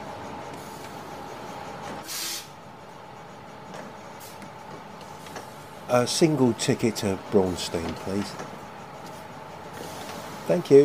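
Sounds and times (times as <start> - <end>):
bus engine idling: 0.0 - 10.8
bus air brakes hissing as they release: 0.5 - 2.6, 4.1 - 5.8, 9.1 - 10.6
speech: 5.9 - 8.6, 10.5 - 10.8.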